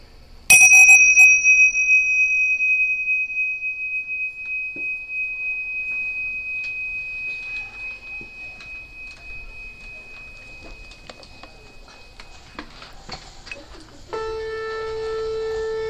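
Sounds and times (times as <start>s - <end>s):
meditation bell ringing: 0.5s - 15.8s.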